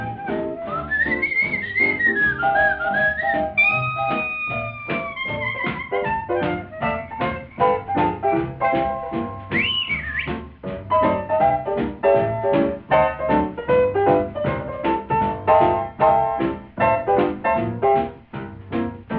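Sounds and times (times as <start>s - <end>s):
person whistling a bright wavering melody: 0.0s - 7.7s, 9.4s - 10.4s
steady rhythmic instrumental accompaniment: 0.0s - 19.1s.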